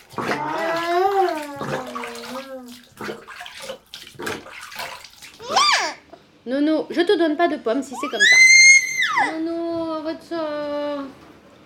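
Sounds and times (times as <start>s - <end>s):
water sloshing in a bath as a child's hair is rinsed: 0.0s - 11.6s
child whining: 0.3s - 2.8s, 5.4s - 6.1s, 8.0s - 9.4s
speech: 6.5s - 8.5s.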